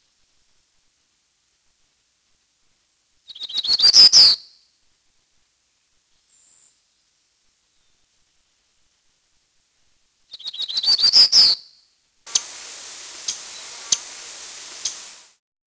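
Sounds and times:
bird song with buzzy trill: 0:03.3 - 0:04.6, 0:10.3 - 0:15.3
hiss with clicks: 0:12.3 - 0:15.4.

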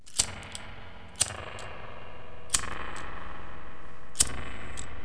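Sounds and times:
lighter: 0:00.0 - 0:01.7, 0:02.5 - 0:03.1, 0:04.2 - 0:04.9.

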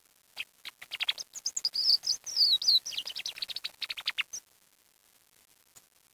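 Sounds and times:
bird chirps and whistles: 0:00.6 - 0:04.4.

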